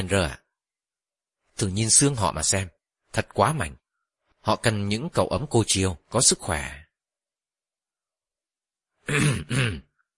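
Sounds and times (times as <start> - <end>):
speech: 0.0 - 0.4, 1.6 - 3.8, 4.4 - 6.8, 9.1 - 9.9
man clearing his throat: 9.0 - 10.0.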